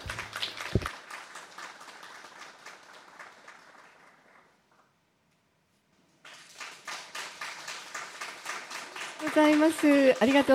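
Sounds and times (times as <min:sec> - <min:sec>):
audience applause for a classical singer and pianist: 0:00.0 - 0:04.6, 0:06.2 - 0:10.5
speech: 0:09.3 - 0:10.5.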